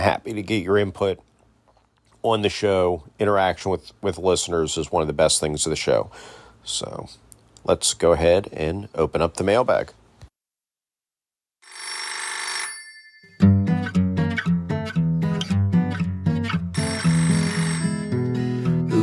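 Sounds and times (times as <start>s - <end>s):
speech: 0.0s - 1.3s, 2.2s - 10.0s
telephone bell ringing: 11.6s - 13.6s, 16.8s - 18.7s
bouncy rhythmic music track: 13.4s - 19.0s.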